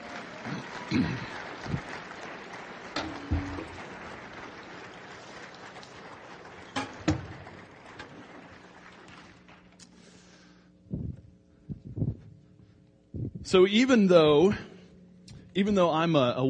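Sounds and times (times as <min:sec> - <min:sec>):
audience applause for a group of women: 0:00.0 - 0:09.8
speech: 0:00.9 - 0:01.9, 0:13.5 - 0:14.7, 0:15.6 - 0:16.4
scattered low thumps: 0:10.9 - 0:12.3.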